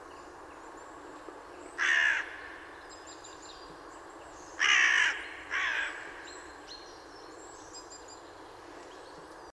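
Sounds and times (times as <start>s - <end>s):
background hiss: 0.0s - 9.5s
Corvus corone carrion crow cawing: 1.8s - 2.6s, 4.6s - 6.3s.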